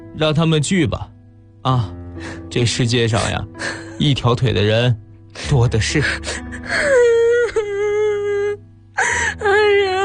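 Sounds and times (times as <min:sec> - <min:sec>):
speech: 0:00.2 - 0:07.0
person crying: 0:06.0 - 0:10.0.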